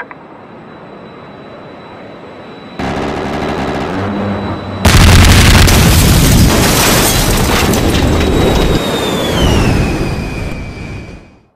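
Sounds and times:
airstrike explosion: 0:02.8 - 0:11.3.

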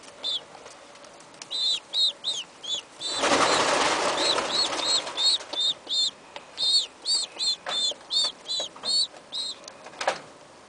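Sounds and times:
baby pigeon chick peeping: 0:00.0 - 0:09.9
loud rustling burst: 0:03.0 - 0:05.7.

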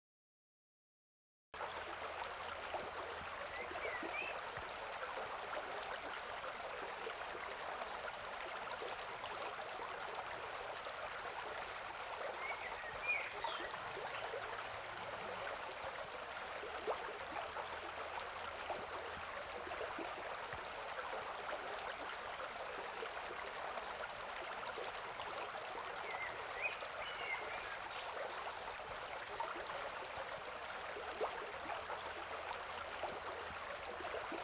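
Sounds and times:
river flowing: 0:01.6 - 0:34.4.

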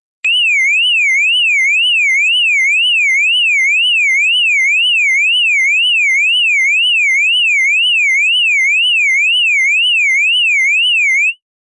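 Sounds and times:
distant car alarm: 0:00.3 - 0:11.4.

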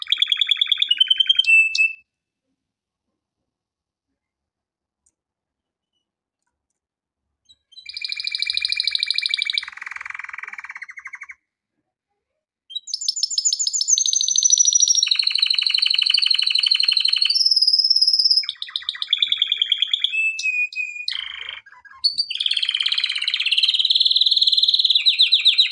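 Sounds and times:
canary singing: 0:00.0 - 0:02.0, 0:07.5 - 0:11.4, 0:12.7 - 0:25.6.

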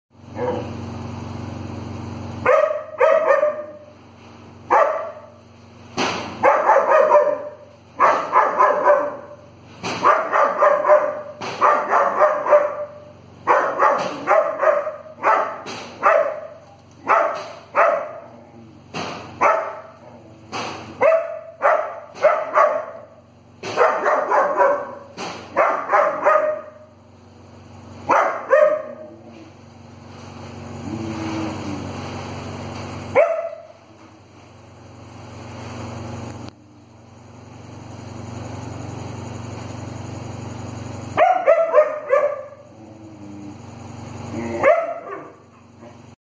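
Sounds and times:
German Shepherd dog: 0:02.5 - 0:03.9, 0:04.7 - 0:05.4, 0:06.4 - 0:09.4, 0:10.0 - 0:18.4, 0:19.4 - 0:20.2, 0:21.0 - 0:23.1, 0:23.7 - 0:26.8, 0:28.1 - 0:29.5, 0:33.2 - 0:33.8, 0:41.2 - 0:42.6, 0:44.4 - 0:46.0.

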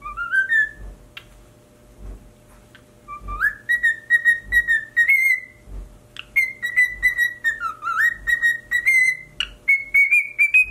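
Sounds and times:
cockatiel singing warbling whistled phrases: 0:00.0 - 0:00.8, 0:03.1 - 0:05.6, 0:06.2 - 0:10.7.

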